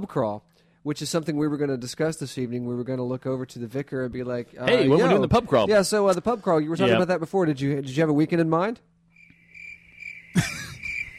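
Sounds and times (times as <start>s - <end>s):
speech: 0.0s - 8.9s
crickets chirping: 9.1s - 11.1s.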